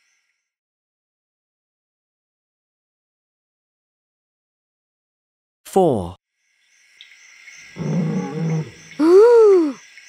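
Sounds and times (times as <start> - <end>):
speech: 5.7 - 6.2
lion growling and roaring: 7.8 - 9.0.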